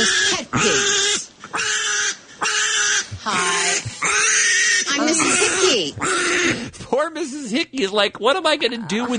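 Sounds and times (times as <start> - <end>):
piglet screaming shrilly while held off the ground: 0.0 - 6.7
speech: 5.2 - 9.1.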